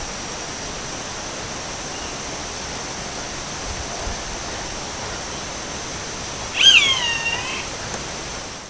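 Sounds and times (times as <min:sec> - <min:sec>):
faint steady hiss: 0:00.0 - 0:08.6
roadside hawk mewing scream in Uruguay: 0:06.5 - 0:07.9.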